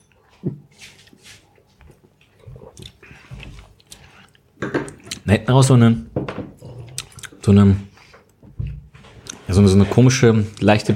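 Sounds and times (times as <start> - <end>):
person taking a sip of a mango drink: 2.2 - 4.5, 6.6 - 7.4
speech: 5.3 - 6.1, 7.5 - 7.9, 9.6 - 10.9.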